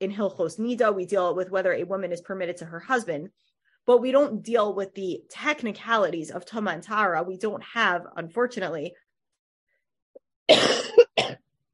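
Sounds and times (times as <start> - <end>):
speech: 0.0 - 9.0
person coughing from bad allergies: 10.5 - 11.5.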